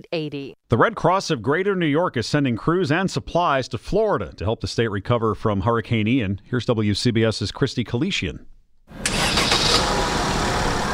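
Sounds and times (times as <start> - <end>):
speech: 0.0 - 9.0
Red Cross emergency response vehicle engine starting and driving off: 8.9 - 10.9.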